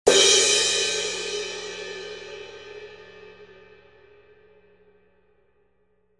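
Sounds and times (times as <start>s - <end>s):
18-inch dark medium thin crash cymbal: 0.1s - 4.6s.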